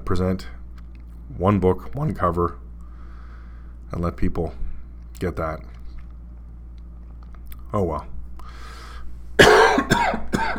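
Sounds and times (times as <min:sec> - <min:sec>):
speech: 0:00.1 - 0:00.6, 0:01.3 - 0:02.6, 0:03.9 - 0:04.6, 0:05.2 - 0:05.7, 0:07.7 - 0:08.2
person coughing harshly: 0:09.4 - 0:10.5.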